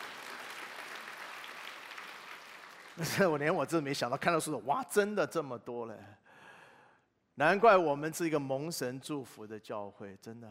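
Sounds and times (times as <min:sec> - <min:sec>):
church congregation applauding: 0:00.0 - 0:03.9
speech: 0:03.0 - 0:06.2, 0:07.4 - 0:10.4.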